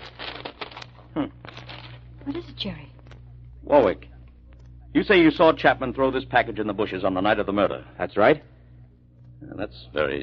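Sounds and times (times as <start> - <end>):
newspaper wrapped around a gun crinkling as it is unwrapped: 0.0 - 3.3
low steady hum: 0.0 - 10.2
speech: 1.2 - 1.6, 2.3 - 2.9, 3.6 - 4.1, 4.9 - 8.5, 9.4 - 10.2.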